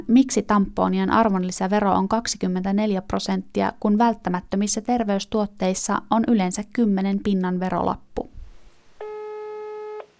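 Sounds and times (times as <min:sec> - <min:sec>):
speech: 0:00.0 - 0:08.3
faint hiss: 0:00.0 - 0:10.1
electronic telephone call tone: 0:09.0 - 0:10.1.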